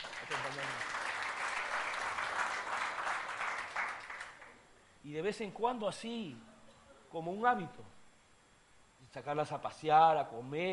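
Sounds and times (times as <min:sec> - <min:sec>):
audience applauding: 0:00.0 - 0:04.6
speech: 0:05.1 - 0:06.5, 0:07.1 - 0:08.0, 0:09.1 - 0:10.7.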